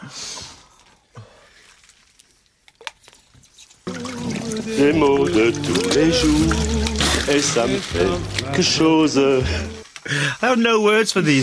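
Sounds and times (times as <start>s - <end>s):
water pouring: 3.8s - 11.4s
water splashes and drips: 3.9s - 10.4s
speech: 4.5s - 11.4s.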